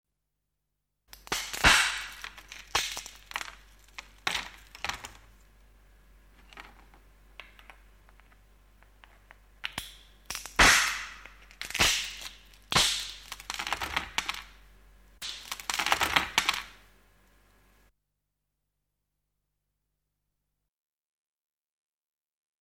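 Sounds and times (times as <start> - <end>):
wood breaking: 1.2 - 5.2, 10.3 - 14.4, 15.2 - 16.8.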